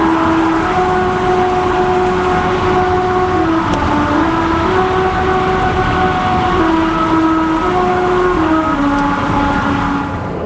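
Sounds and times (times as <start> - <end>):
car tires humming a melody over grooves of a singing road on Route 66: 0.0 - 10.4.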